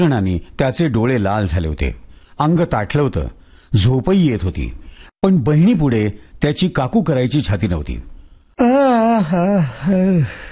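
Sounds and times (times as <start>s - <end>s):
speech: 0.0s - 10.4s
tired sleepy man giving a big yawn: 8.6s - 10.4s.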